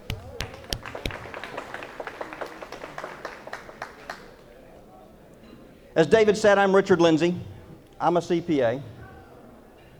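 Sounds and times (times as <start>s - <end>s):
small group of attendees clapping at a retirement planning seminar: 0.0s - 4.6s
faint murmur of voices: 0.0s - 9.9s
speech: 6.0s - 9.0s.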